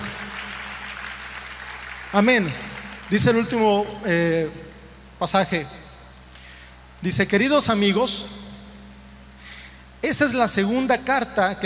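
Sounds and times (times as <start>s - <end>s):
audience applauding: 0.0s - 3.9s
speech: 2.1s - 5.8s, 7.0s - 8.4s, 10.0s - 11.6s.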